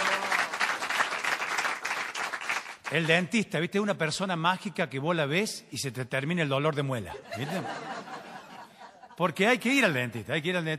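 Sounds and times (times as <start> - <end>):
live audience applauding a guest at a stand-up comedy show: 0.0 - 3.1
speech: 2.9 - 7.9, 9.2 - 10.7
laughter: 7.1 - 9.2.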